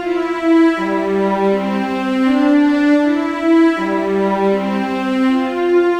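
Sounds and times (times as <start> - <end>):
cellos playing ambient music: 0.0 - 5.9.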